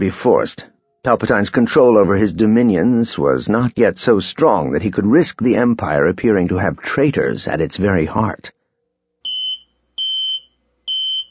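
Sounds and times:
speech: 0.0 - 8.6
sci-fi personal comlink beeping: 9.3 - 11.2.

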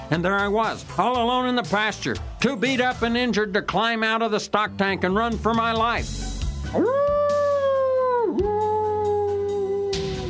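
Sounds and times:
speech: 0.1 - 7.1
coyotes howling in the evening: 6.7 - 10.2.

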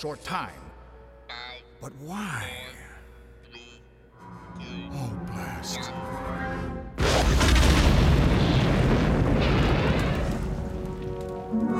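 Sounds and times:
speech: 0.0 - 0.7, 1.8 - 2.8, 4.6 - 6.3, 11.5 - 11.7
huge starship exploding: 7.0 - 11.0.

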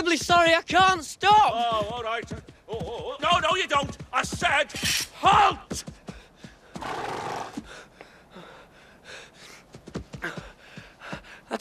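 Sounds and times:
speech: 0.1 - 5.9
horse whinnying: 6.8 - 7.6
horse snorts and huffs: 6.8 - 7.7.

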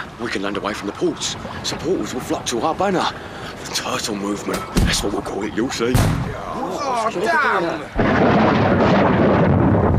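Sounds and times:
speech: 0.2 - 9.2
thunder rumbling: 8.0 - 9.9.

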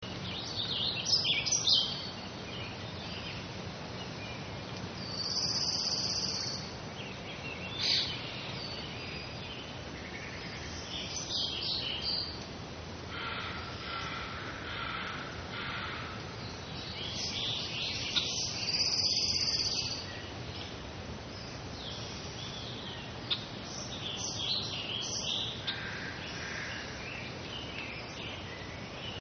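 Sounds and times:
forest ambience: 0.0 - 29.1.

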